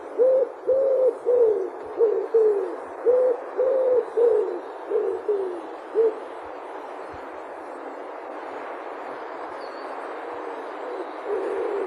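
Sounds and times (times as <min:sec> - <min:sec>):
faint background hiss: 0:00.0 - 0:11.8
common wood pigeon cooing in soft low notes: 0:00.1 - 0:06.3, 0:10.4 - 0:11.8.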